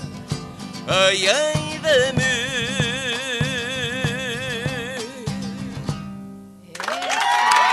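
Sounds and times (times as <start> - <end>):
zamba song with guitar strumming: 0.0 - 6.7
speech: 0.9 - 2.2
audience bursting into loud applause: 6.8 - 7.7.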